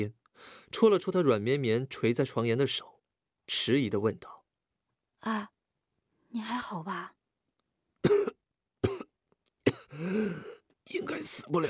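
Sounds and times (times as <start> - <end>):
speech: 0.0 - 4.4, 5.2 - 5.6, 6.3 - 7.2, 10.0 - 11.6
man with sore lungs after choking coughing weakly: 8.0 - 10.6.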